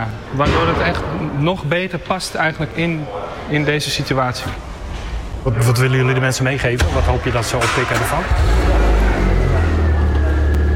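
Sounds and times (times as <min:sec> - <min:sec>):
speech: 0:00.0 - 0:04.7, 0:05.4 - 0:08.7
car engine running with a steady low rumble: 0:06.8 - 0:10.7.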